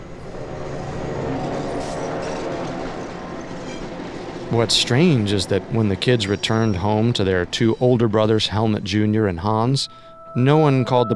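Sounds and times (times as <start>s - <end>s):
train rolling along the rails with rumble and hiss: 0.0s - 8.2s
speech: 4.5s - 11.1s.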